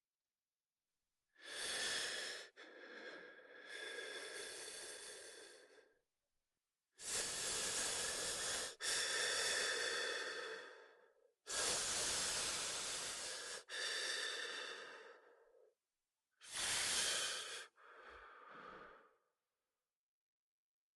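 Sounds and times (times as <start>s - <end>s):
man deep open-mouth breath with long exhale through s-formed lips: 1.4s - 6.0s, 7.0s - 15.7s, 16.4s - 19.3s.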